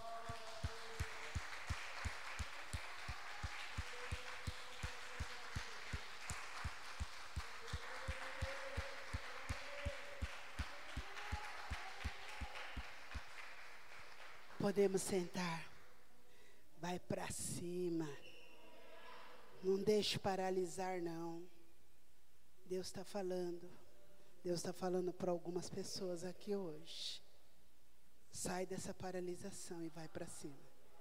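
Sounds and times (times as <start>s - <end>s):
worship audience clapping in steady unison: 0.0s - 15.6s
speech: 14.6s - 15.7s, 16.8s - 18.3s, 19.6s - 21.6s, 22.7s - 23.8s, 24.4s - 27.2s, 28.4s - 30.7s.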